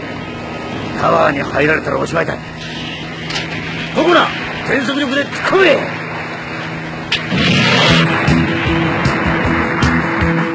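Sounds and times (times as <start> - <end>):
helicopter engine and wind roar: 0.0 - 10.5
speech: 1.0 - 2.8, 4.0 - 6.0
helicopter rotor thumping: 2.6 - 10.5.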